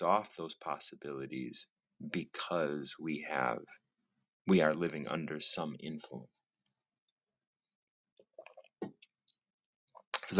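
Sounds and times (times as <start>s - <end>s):
speech: 0.0s - 3.8s, 4.5s - 6.4s
someone sipping and swallowing kombucha: 8.2s - 8.9s
mouth clicks: 9.9s - 10.3s.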